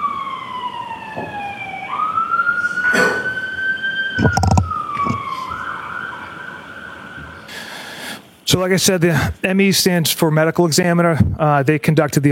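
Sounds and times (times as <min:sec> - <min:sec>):
ambulance siren passing outside a courtroom: 0:00.0 - 0:07.8
bursts of noise: 0:00.0 - 0:07.8
speech: 0:08.5 - 0:12.3.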